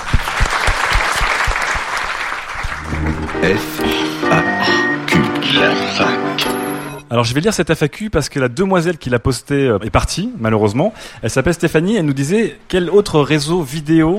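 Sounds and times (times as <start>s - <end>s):
crowd applauding: 0.0s - 6.4s
short musical jingle: 2.8s - 7.2s
speech: 3.4s - 4.3s, 7.1s - 14.1s.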